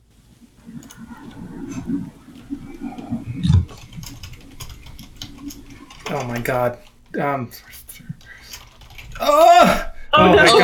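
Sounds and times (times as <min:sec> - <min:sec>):
speech: 0:01.9 - 0:02.2, 0:06.2 - 0:07.8, 0:09.2 - 0:10.6
light computer keyboard typing during an online trivia quiz game: 0:03.7 - 0:06.9, 0:08.2 - 0:09.3.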